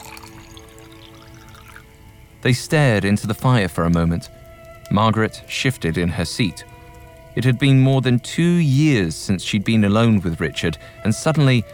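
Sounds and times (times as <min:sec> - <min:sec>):
whisky pouring into a glass after dinner in a sitting room: 0:00.0 - 0:03.6
speech: 0:02.4 - 0:06.7, 0:07.4 - 0:11.7.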